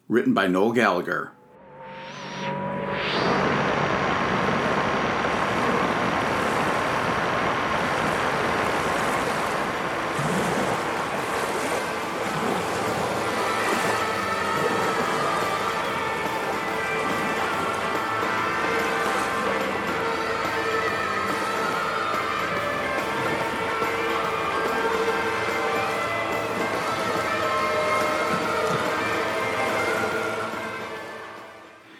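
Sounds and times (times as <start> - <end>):
speech: 0.1 - 1.4
faint sustained tones: 1.1 - 31.9
white noise: 2.7 - 14.1
ocean surf crashing: 3.0 - 31.8.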